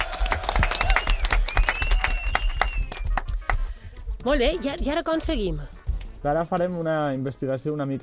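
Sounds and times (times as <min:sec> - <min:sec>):
small group applauding: 0:00.0 - 0:03.7
speech: 0:04.2 - 0:08.0.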